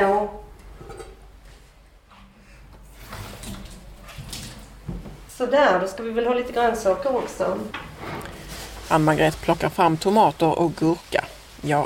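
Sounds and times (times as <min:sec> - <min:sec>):
water poured out into a sink: 0:02.9 - 0:05.0
speech: 0:05.4 - 0:07.9, 0:08.9 - 0:11.8.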